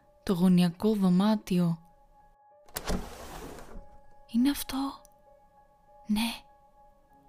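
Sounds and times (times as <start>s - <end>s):
speech: 0.3s - 1.8s, 4.3s - 5.0s, 6.1s - 6.5s
window sliding along its frame: 2.7s - 4.0s.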